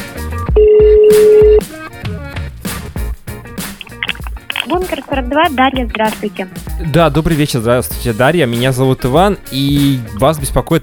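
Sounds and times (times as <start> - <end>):
telephone keypad DTMF tones over a phone line: 0.6 - 1.6
speech: 5.3 - 10.8.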